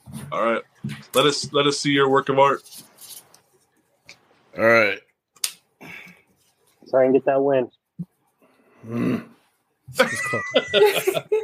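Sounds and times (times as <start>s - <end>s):
speech: 0.3s - 2.9s, 4.6s - 5.0s, 6.9s - 7.8s, 8.8s - 9.3s, 9.9s - 11.4s
man growling: 8.8s - 9.4s
people laughing: 9.9s - 11.4s.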